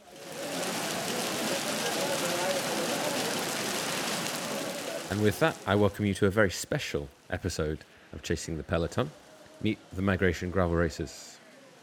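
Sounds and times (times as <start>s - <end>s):
heavy rain pouring on Maasai lands during a gravel race: 0.0s - 11.8s
speech: 5.1s - 11.3s.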